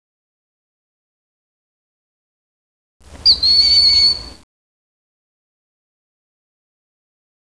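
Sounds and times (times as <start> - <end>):
Japanese hawk calling: 3.2 - 4.4.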